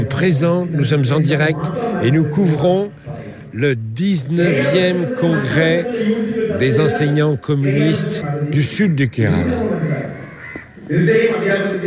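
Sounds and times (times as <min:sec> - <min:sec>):
low murmur: 0:00.0 - 0:11.8
speech: 0:00.2 - 0:09.9, 0:10.9 - 0:11.8
crow cawing: 0:08.9 - 0:10.9.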